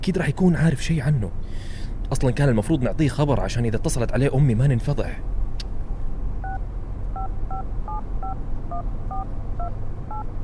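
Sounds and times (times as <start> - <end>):
speech: 0.0 - 5.4
phone keypad tones dialing a number: 7.2 - 10.3.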